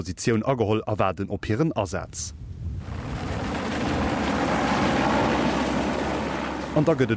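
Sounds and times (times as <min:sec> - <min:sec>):
speech: 0:00.0 - 0:02.4, 0:06.8 - 0:07.1
helicopter droning overhead with broad engine roar: 0:02.8 - 0:07.1.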